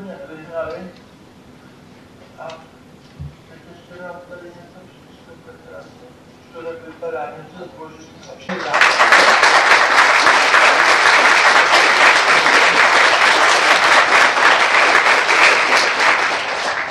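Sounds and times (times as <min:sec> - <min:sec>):
speech: 0:02.4 - 0:02.7
audience applause: 0:08.5 - 0:16.8.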